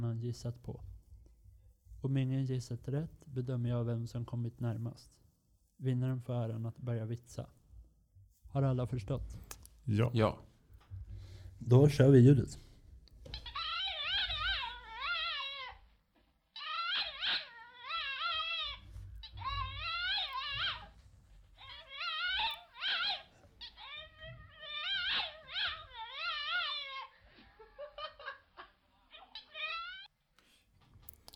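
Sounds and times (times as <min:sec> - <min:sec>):
speech: 0:00.1 - 0:00.9, 0:02.0 - 0:05.2, 0:05.8 - 0:07.6, 0:08.5 - 0:10.5, 0:11.6 - 0:12.6
dog whimpering: 0:13.2 - 0:16.0, 0:16.6 - 0:21.0, 0:21.6 - 0:28.4, 0:29.0 - 0:30.1.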